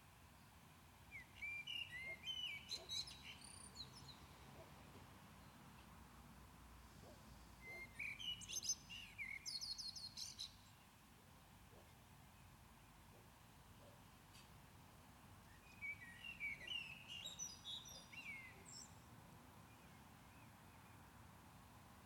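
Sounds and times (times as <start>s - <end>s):
faint background hiss: 0.0s - 22.0s
common blackbird singing at Maindy: 1.1s - 4.3s, 7.6s - 10.7s, 15.5s - 19.0s.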